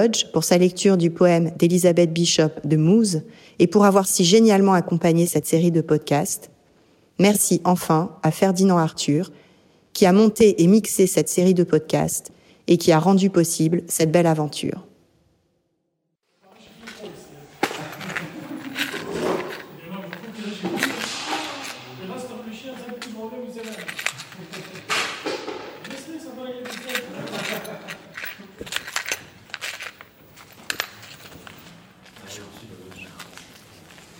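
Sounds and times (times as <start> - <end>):
speech: 0.0 - 6.5, 7.2 - 9.4, 10.0 - 14.9
laughter: 17.6 - 21.4, 24.1 - 25.0, 26.9 - 28.6
small metal screws and washers clinking and rattling during rummaging: 23.6 - 24.9, 26.6 - 31.6.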